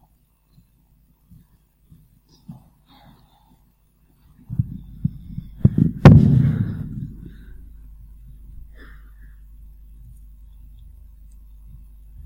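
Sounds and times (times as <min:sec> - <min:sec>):
heartbeat sound effect of deep thumps: 0:04.4 - 0:08.8, 0:09.6 - 0:12.2
low rumble: 0:04.5 - 0:11.1.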